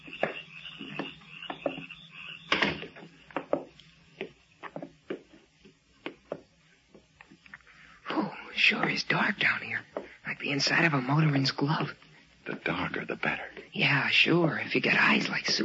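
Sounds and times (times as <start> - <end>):
irregular wooden knocks and creaks: 0.0 - 7.4
basement entrance door closing with a solid thud: 2.5 - 2.9
speech: 8.7 - 12.0, 12.6 - 15.6.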